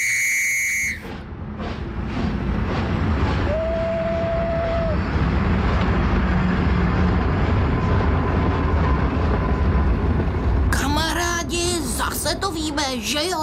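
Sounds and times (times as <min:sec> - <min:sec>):
short whistle-like tone: 0:00.0 - 0:01.1
train rumbling at a railway station: 0:00.0 - 0:13.4
speech: 0:12.7 - 0:13.4.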